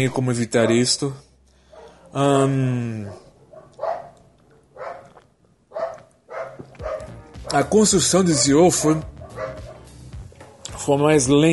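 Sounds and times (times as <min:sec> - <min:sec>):
speech: 0:00.0 - 0:01.3, 0:02.1 - 0:03.2, 0:07.5 - 0:09.5, 0:10.8 - 0:11.5
neighbor's dog barking: 0:00.6 - 0:01.0, 0:01.7 - 0:02.2, 0:03.0 - 0:07.2, 0:08.1 - 0:10.7.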